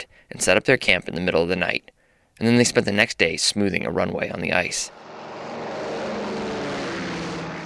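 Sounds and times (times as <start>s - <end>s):
speech: 0.0s - 5.0s
propeller airplane flying overhead: 4.9s - 7.6s.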